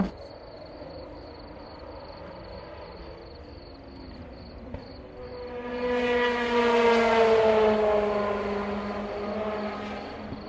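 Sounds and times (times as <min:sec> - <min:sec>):
crickets chirping: 0:00.1 - 0:06.1, 0:08.3 - 0:10.4
passing aircraft engine droning: 0:00.7 - 0:10.4.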